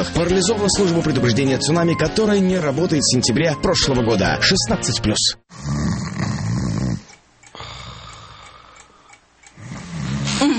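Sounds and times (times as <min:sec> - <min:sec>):
speech: 0:00.0 - 0:05.8
person snoring: 0:05.5 - 0:10.5.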